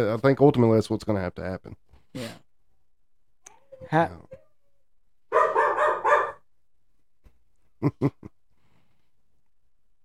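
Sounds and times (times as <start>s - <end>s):
speech: 0.0s - 2.4s, 3.8s - 4.4s, 7.8s - 8.4s
dog barking: 5.3s - 6.5s.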